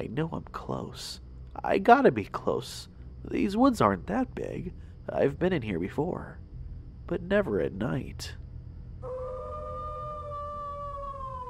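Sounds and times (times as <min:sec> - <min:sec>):
speech: 0:00.0 - 0:06.4, 0:07.1 - 0:08.4
low rumble: 0:00.0 - 0:11.4
coyote howling: 0:09.0 - 0:11.4.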